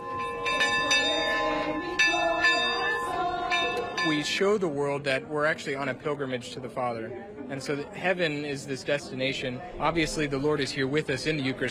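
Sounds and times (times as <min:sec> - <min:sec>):
metal bell ringing on a flower-covered Eucharistic procession float: 0:00.0 - 0:04.4
low murmur: 0:00.0 - 0:11.6
speech: 0:04.1 - 0:11.6.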